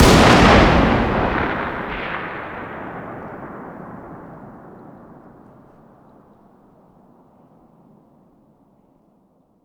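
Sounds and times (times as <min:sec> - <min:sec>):
distant 338 rifle fire outdoors: 0:00.0 - 0:06.0.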